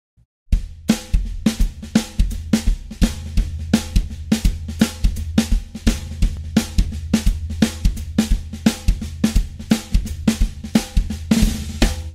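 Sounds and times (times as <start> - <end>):
drum kit playing a New Orleans second line groove: 0.5 - 12.1.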